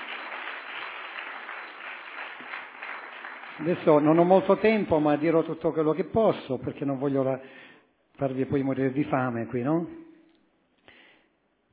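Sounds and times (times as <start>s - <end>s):
audience applauding: 0.0s - 4.8s
speech: 3.6s - 7.6s, 8.2s - 10.0s.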